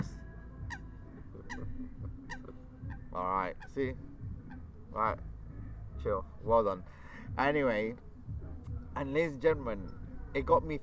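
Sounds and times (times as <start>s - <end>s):
ducks honking: 0.6s - 5.1s
speech: 3.2s - 4.1s, 5.0s - 5.3s, 6.0s - 8.1s, 9.0s - 10.8s.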